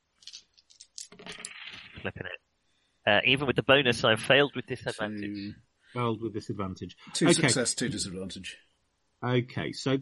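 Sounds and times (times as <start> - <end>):
dice clattering on a hard surface during a tabletop game roll: 0.2 - 1.6
speech: 2.0 - 2.4, 3.1 - 10.0.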